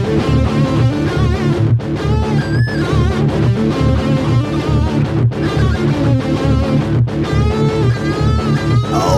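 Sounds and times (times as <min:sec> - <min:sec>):
mournful electric guitar solo: 0:00.0 - 0:09.1
full band backing: 0:08.9 - 0:09.1.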